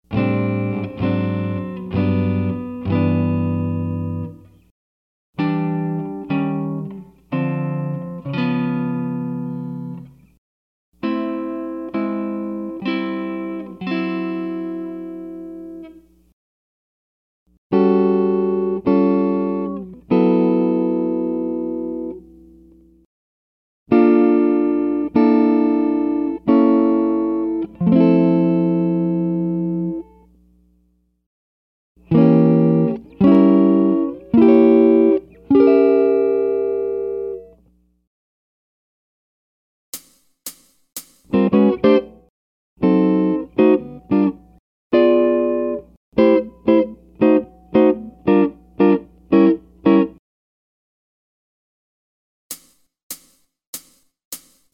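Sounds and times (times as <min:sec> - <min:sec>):
jazz guitar: 0:00.1 - 0:04.6, 0:05.4 - 0:10.3, 0:11.0 - 0:16.1, 0:17.7 - 0:22.7, 0:23.9 - 0:30.2, 0:32.0 - 0:37.6, 0:41.2 - 0:50.2.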